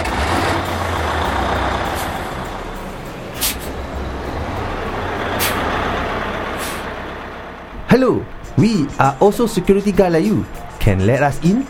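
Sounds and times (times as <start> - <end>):
heavy lorry engine being started and idling: 0.0 - 11.6
lorry air-brake hisses: 1.9 - 2.3, 3.4 - 3.8, 5.4 - 5.7, 6.6 - 6.9
speech: 7.9 - 11.6.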